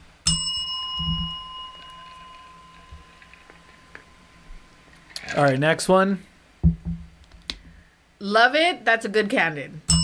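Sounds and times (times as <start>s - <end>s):
faint noise: 0.0s - 10.0s
bell strike ringing: 0.3s - 4.8s
speech: 5.4s - 6.3s, 8.2s - 9.9s.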